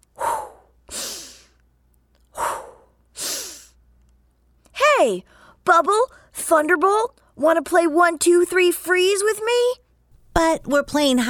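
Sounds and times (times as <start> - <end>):
deep breathing in and out voiced for a fire-breathing dragon: 0.2 - 1.6, 2.3 - 3.8
speech: 5.0 - 9.8, 10.4 - 11.2.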